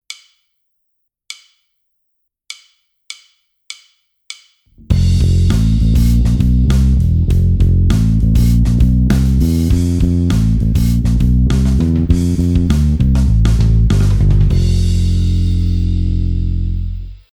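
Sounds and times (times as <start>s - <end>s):
bass phrase: 4.7s - 17.3s.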